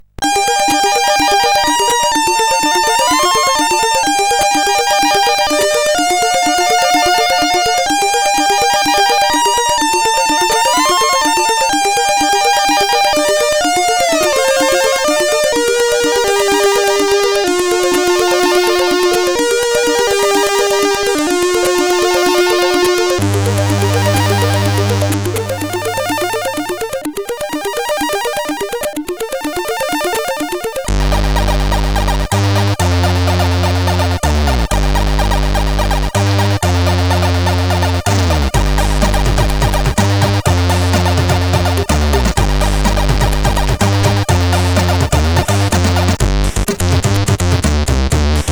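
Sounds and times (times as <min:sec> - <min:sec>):
slow synth arpeggios: 0:00.1 - 0:48.4.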